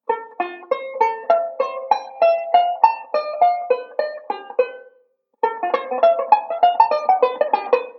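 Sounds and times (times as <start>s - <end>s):
banjo playing a ii V pattern: 0.0s - 7.9s.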